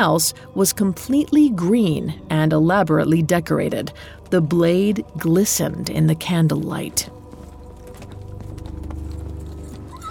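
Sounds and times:
speech: 0.0 - 7.2
low sustained droning background: 0.0 - 10.0
horse hooves clip-clopping: 3.1 - 10.0.

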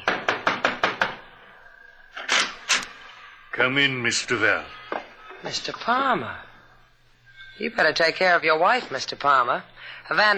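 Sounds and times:
knocking on a door: 0.0 - 1.3
speech: 3.6 - 4.8, 5.4 - 6.5, 7.6 - 10.3.

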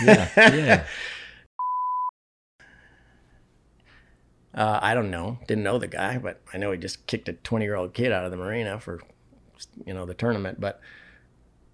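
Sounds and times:
speech: 0.0 - 1.1, 4.6 - 11.0
censor bleep electronic tone: 1.6 - 2.1.

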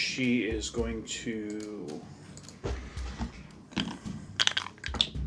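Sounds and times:
speech: 0.2 - 2.2
dice being dropped and rolled: 3.7 - 5.1.

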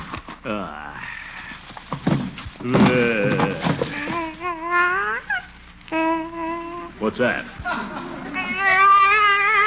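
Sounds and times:
speech: 0.4 - 1.2, 2.6 - 3.3, 7.0 - 7.6
baby crying in a car: 3.3 - 7.0, 8.2 - 9.6.

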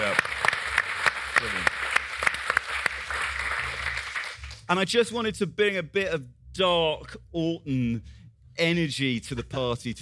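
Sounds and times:
hands clapping: 0.0 - 4.7
speech: 4.7 - 10.0.

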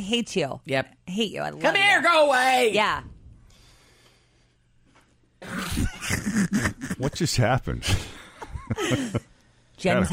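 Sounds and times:
speech: 0.0 - 3.1, 5.4 - 8.1, 8.7 - 10.1
heavy coughing fit: 5.4 - 7.2.

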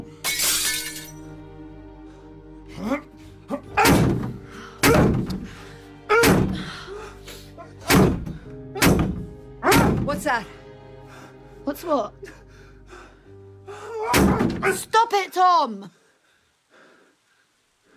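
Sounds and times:
fire axe striking a metal door: 3.8 - 5.4, 6.2 - 6.6, 7.8 - 10.2, 14.1 - 14.7
speech: 10.2 - 10.6, 11.7 - 12.4, 14.2 - 16.0.

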